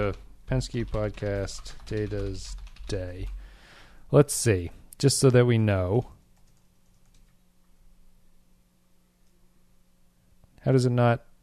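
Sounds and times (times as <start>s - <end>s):
speech: 0.0s - 3.4s, 4.1s - 6.2s, 10.6s - 11.3s
steady low electrical hum: 0.0s - 11.4s
typing on a computer keyboard: 0.7s - 3.0s, 6.4s - 7.4s.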